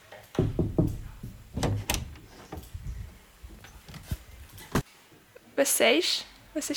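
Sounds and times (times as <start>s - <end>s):
sharp knocks on wood: 0.4s - 2.6s
speech: 5.6s - 6.7s.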